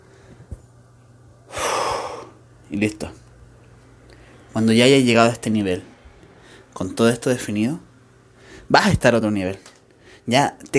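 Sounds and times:
deep breath with airy exhale: 1.5 - 2.4, 6.0 - 6.8, 8.4 - 8.7, 10.0 - 10.3
speech: 2.7 - 3.2, 4.5 - 5.9, 6.8 - 7.9, 8.7 - 9.7, 10.3 - 10.7.

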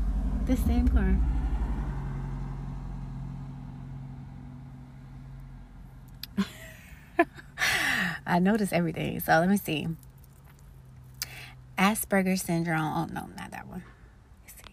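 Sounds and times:
car passing by: 0.0 - 5.8
speech: 0.5 - 1.4, 8.3 - 10.1, 11.8 - 14.0.

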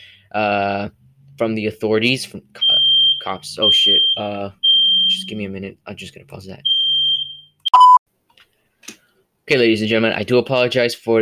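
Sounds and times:
speech: 0.3 - 6.8, 9.5 - 11.2
fire alarm beeping: 2.6 - 5.4, 6.6 - 8.0.

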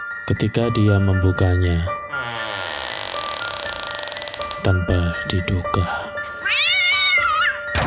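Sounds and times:
speech: 0.3 - 2.7, 4.6 - 6.6
cat meowing: 6.3 - 7.7.

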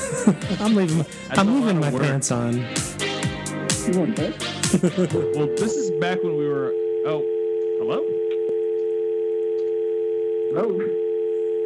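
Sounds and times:
laughter: 0.0 - 1.0, 3.8 - 5.9
speech: 0.3 - 2.9, 3.9 - 8.2, 10.5 - 11.0
fake telephone dial tone: 5.3 - 11.6.

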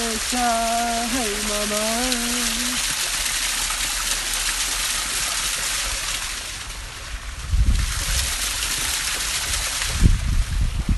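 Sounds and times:
water pouring and running: 0.0 - 10.9
speech: 0.2 - 2.3.

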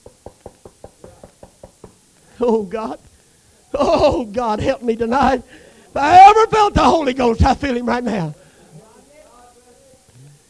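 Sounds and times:
knocking on a door: 0.0 - 2.0
speech: 2.4 - 3.1, 3.7 - 8.4.

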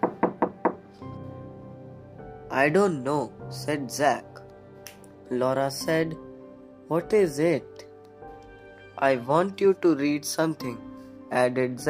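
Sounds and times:
knocking on a door: 0.0 - 0.9
speech: 2.6 - 4.3, 5.3 - 6.2, 6.9 - 7.8, 9.0 - 11.8.

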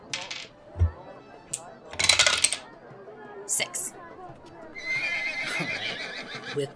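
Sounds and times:
two dice rattling across a hard table in a tabletop role-playing game: 0.0 - 0.5, 1.5 - 2.6
soft thump: 0.8 - 1.0
speech: 3.5 - 4.0, 6.6 - 6.7
horse neighing: 4.8 - 6.6.

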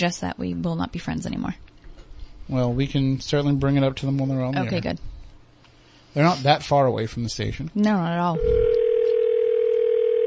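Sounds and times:
speech: 0.0 - 1.7, 2.5 - 5.2, 6.1 - 8.7
telephone ringing down the line: 8.4 - 10.2.

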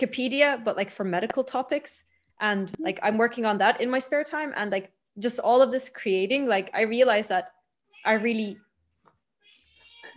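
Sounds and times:
speech: 0.0 - 8.6
cat meowing: 9.4 - 10.1.

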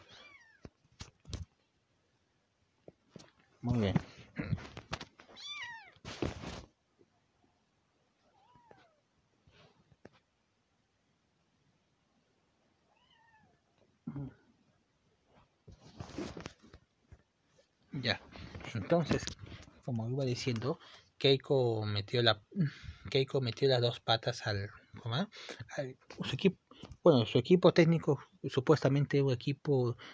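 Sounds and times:
speech: 3.6 - 4.1, 18.9 - 30.1
cat meowing: 5.4 - 6.0, 8.3 - 9.0, 12.9 - 13.5.

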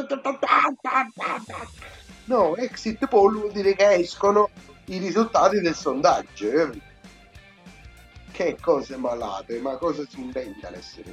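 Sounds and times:
person imitating chickens clucking: 0.0 - 2.0
speech: 0.0 - 6.9, 8.3 - 11.1.

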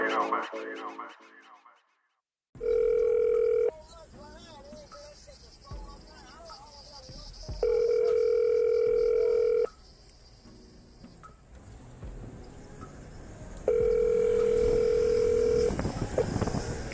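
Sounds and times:
outgoing phone call ringback tone: 2.6 - 3.7, 7.6 - 9.8, 13.7 - 16.3.

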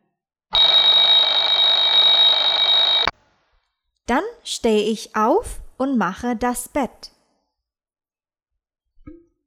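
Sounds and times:
alarm clock ringing: 0.6 - 3.1
speech: 4.1 - 7.2.

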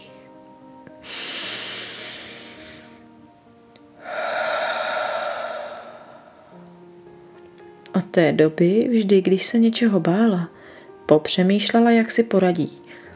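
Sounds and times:
deep breathy inhale: 1.0 - 3.0, 4.0 - 6.8, 10.6 - 11.0
long slow exhale: 1.0 - 3.0, 4.0 - 6.8
speech: 8.2 - 12.8.

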